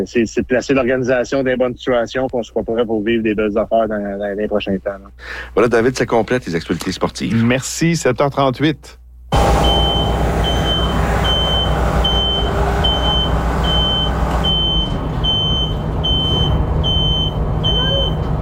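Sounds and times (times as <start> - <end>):
speech: 0.0 - 9.6
truck reverse beeper beeping: 9.3 - 18.3
truck engine rumble while backing up: 9.3 - 18.4.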